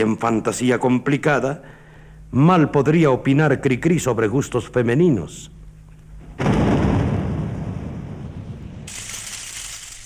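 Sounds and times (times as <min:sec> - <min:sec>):
speech: 0:00.0 - 0:05.6
loud low rumble of thunder: 0:06.4 - 0:09.2
steady hiss of heavy rain: 0:08.8 - 0:10.0.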